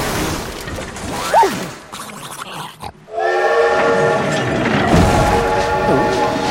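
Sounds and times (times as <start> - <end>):
grunting sliding vocal sounds: 1.2 - 3.0
train rumbling along the tracks: 3.0 - 6.4.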